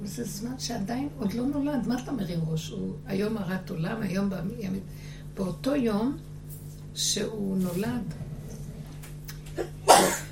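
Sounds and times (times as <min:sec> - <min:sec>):
quiet hum: 0:00.0 - 0:10.3
speech: 0:00.1 - 0:06.3, 0:07.0 - 0:08.3, 0:09.6 - 0:10.2
person sneezing: 0:09.6 - 0:10.3.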